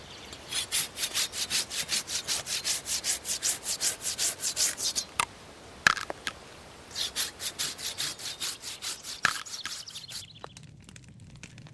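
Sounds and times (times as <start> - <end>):
hand saw cutting through wood: 0.5 - 5.1, 7.0 - 10.2.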